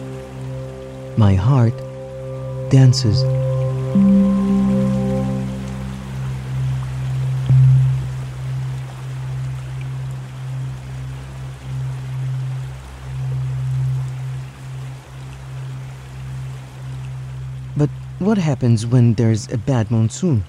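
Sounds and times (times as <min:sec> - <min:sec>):
low sustained droning hum: 0:00.0 - 0:18.3
speech: 0:01.2 - 0:01.9, 0:02.7 - 0:05.0, 0:17.8 - 0:20.4
rain pattering on new summer leaves: 0:05.5 - 0:18.5.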